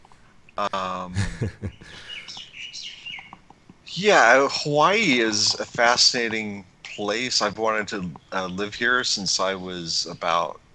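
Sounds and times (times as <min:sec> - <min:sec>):
birds chirping outdoors: 0:00.0 - 0:10.5
speech: 0:00.6 - 0:02.1, 0:04.0 - 0:10.6
laughter: 0:00.6 - 0:02.4.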